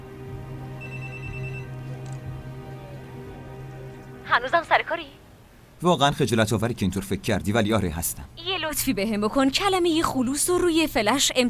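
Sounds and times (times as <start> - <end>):
steady low hum: 0.0 - 9.2
faint telephone ringing after a call is placed: 0.8 - 1.8
speech: 4.3 - 5.2, 5.8 - 11.4.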